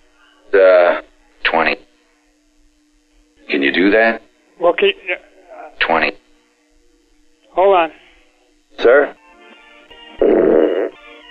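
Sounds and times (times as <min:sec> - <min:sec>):
speech: 0:03.7 - 0:06.2, 0:07.7 - 0:08.0, 0:08.8 - 0:09.2
loud buzzy fart: 0:10.1 - 0:11.2.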